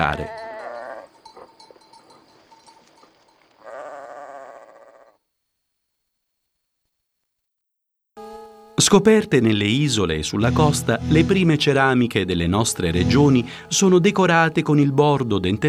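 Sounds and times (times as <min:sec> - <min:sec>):
speech: 0:00.0 - 0:00.4, 0:08.9 - 0:15.6
sheep bleating: 0:00.0 - 0:01.4, 0:03.6 - 0:05.2, 0:08.8 - 0:15.6
small bells tinkling: 0:00.0 - 0:03.7.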